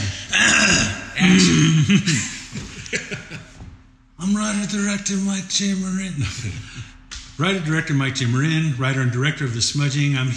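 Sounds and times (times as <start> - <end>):
person clearing throat in rough gravelly bursts: 0.0 - 2.8
speech: 0.7 - 3.5, 4.2 - 10.3
laughter: 1.2 - 3.7, 6.0 - 7.0.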